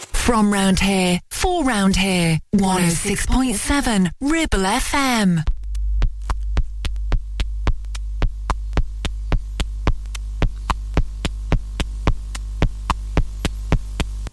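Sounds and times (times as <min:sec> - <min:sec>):
speech: 0:00.3 - 0:05.5
deep continuous low throb: 0:05.4 - 0:14.3
fast heartbeat sound effect: 0:05.4 - 0:14.3.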